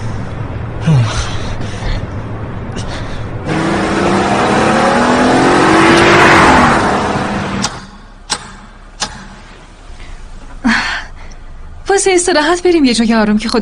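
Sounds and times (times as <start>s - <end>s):
car engine revving and pulling away: 0.0s - 10.4s
sharp clicks and knocks: 7.6s - 9.6s
speech: 12.0s - 13.6s.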